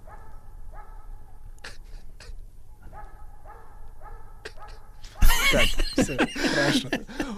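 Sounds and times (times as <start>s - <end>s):
dog barking with short high yelps: 0.0s - 1.5s, 2.8s - 5.4s
laughter: 4.5s - 7.3s
speech: 5.5s - 7.3s.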